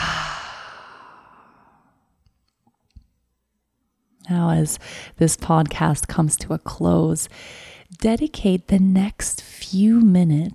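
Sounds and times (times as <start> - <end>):
slow exhale through the open mouth: 0.0 - 1.8
speech: 4.2 - 10.5.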